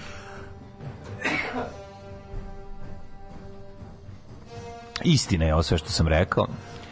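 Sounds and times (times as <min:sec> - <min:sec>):
sick older man coughing: 0:01.1 - 0:02.0
speech: 0:01.5 - 0:01.8, 0:05.0 - 0:06.8.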